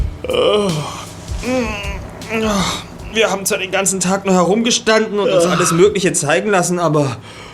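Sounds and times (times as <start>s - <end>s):
person yawning behind a hand: 0.2s - 3.1s, 5.3s - 6.0s
speech: 1.5s - 7.5s.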